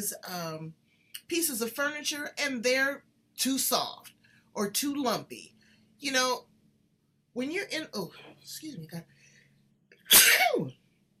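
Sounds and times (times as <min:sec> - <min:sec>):
speech: 0:00.0 - 0:06.5, 0:07.4 - 0:09.1, 0:10.1 - 0:10.8
person sneezing: 0:10.1 - 0:10.7.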